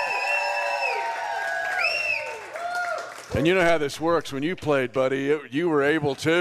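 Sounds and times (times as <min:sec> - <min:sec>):
crowd cheering with whoops and shouts: 0:00.0 - 0:03.8
audience applause: 0:00.0 - 0:03.9, 0:05.9 - 0:06.3
speech: 0:03.3 - 0:06.3.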